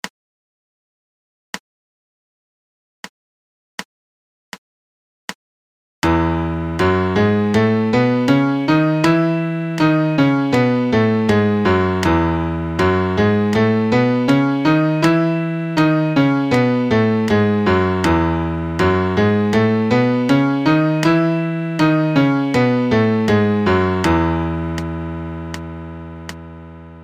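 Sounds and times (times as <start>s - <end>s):
MIDI major scale in E: 6.1s - 27.0s.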